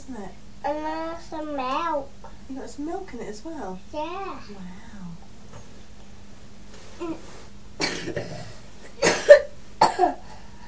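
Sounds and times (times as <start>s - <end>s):
speech: 0.1s - 5.2s, 7.0s - 7.4s, 8.0s - 8.6s, 10.0s - 10.2s
small poorly child coughing: 7.8s - 10.3s.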